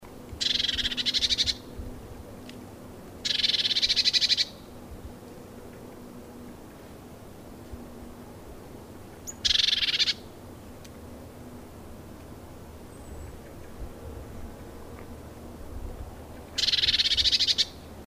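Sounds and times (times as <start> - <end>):
Eurasian blue tit Cyanistes caeruleus churring: 0.4 - 1.6, 3.2 - 4.6, 9.2 - 10.2, 16.6 - 17.8.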